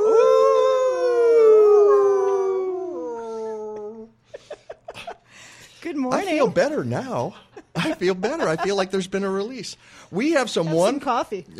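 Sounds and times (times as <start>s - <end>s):
several people howling together like wolves: 0.0s - 4.1s
laughter: 4.3s - 5.4s, 7.2s - 9.5s
speech: 6.1s - 11.5s.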